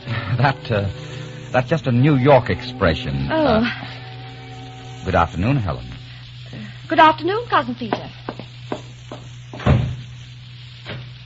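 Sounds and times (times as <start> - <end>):
steady low hum: 0.0 - 11.2
speech: 0.3 - 4.0, 5.0 - 5.9, 6.9 - 8.4
door slamming shut: 9.6 - 10.0.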